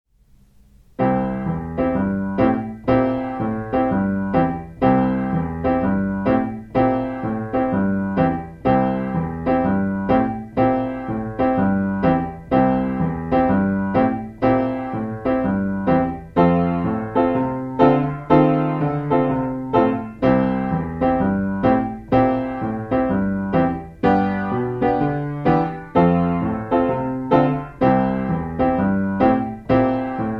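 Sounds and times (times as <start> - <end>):
blues piano: 0.9 - 30.3.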